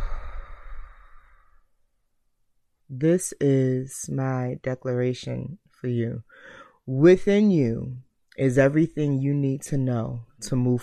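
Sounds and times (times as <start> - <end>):
deep breath out through the mouth as a breathy sigh: 0.0 - 1.6, 6.3 - 6.8
speech: 2.9 - 10.8.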